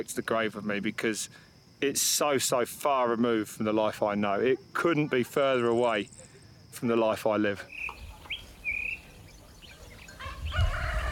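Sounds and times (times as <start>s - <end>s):
speech: 0.0s - 8.0s
rooster crowing: 10.1s - 11.1s.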